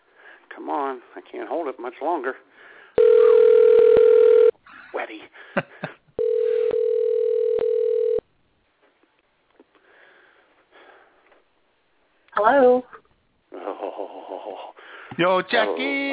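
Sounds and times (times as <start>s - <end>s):
speech: 0.6s - 3.3s, 4.9s - 5.9s, 15.2s - 16.1s
steady telephone dial tone: 3.0s - 4.5s, 6.2s - 8.2s.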